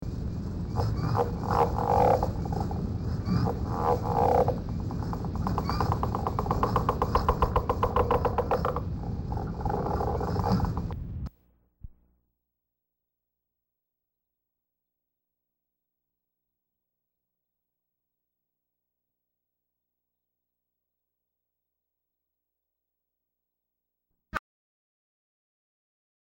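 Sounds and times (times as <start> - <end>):
Northern Leopard Frog: 0.7 - 11.0.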